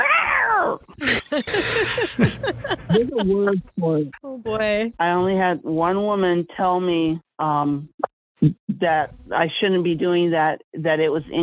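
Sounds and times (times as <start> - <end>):
voice imitating a cat meow: 0.0 - 0.8
laughter: 0.9 - 3.7
speech: 1.0 - 11.4.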